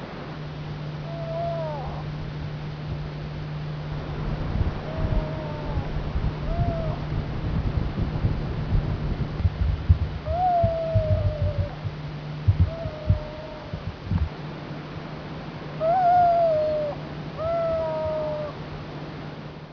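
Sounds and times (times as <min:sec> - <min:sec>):
low hum: 0:00.0 - 0:19.7
Zino's petrel wailing calls on Madeira: 0:01.0 - 0:02.1, 0:04.8 - 0:07.1, 0:10.2 - 0:14.3, 0:15.8 - 0:18.6.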